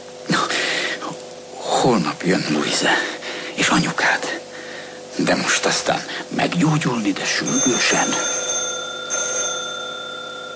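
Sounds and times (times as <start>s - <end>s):
speech: 1.8s - 4.4s, 5.2s - 8.5s
telephone bell ringing: 7.4s - 10.5s.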